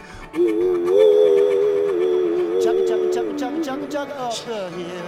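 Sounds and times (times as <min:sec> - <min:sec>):
voice imitating a steam train whistle: 0:00.4 - 0:04.4.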